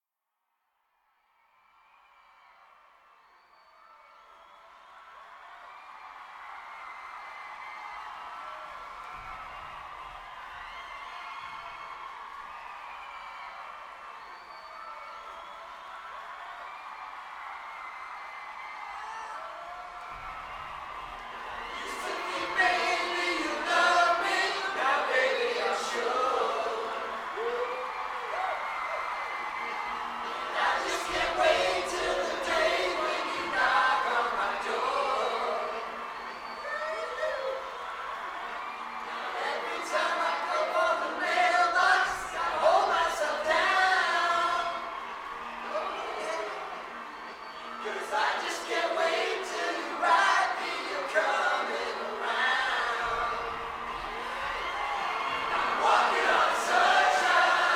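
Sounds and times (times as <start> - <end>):
crowd: 0.8 - 57.7.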